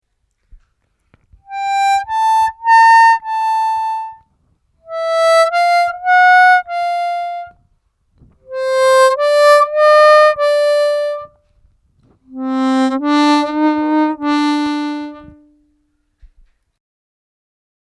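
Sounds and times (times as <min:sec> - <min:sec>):
harmonica overbends on holes six five four and one: 0:01.5 - 0:04.2, 0:04.9 - 0:07.5, 0:08.5 - 0:11.3, 0:12.3 - 0:15.5.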